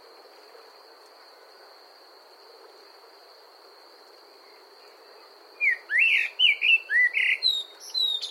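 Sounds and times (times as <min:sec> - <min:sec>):
common blackbird singing a fluty warble: 0:05.6 - 0:08.2.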